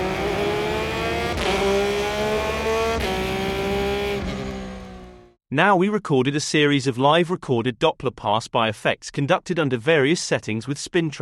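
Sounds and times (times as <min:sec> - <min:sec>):
Porsche 911 GT3 sports car exhaust roaring through gear shifts: 0:00.0 - 0:05.3
speech: 0:05.5 - 0:11.2.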